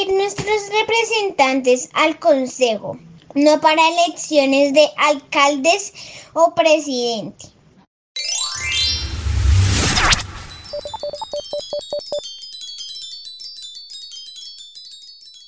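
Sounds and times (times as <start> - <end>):
speech: 0.3 - 7.5
loud electronic whoosh sweeping upward: 8.2 - 12.2
rapid short beeping tones: 8.2 - 12.2
twinkling chime alert for a message on a ship's radio: 8.2 - 15.4.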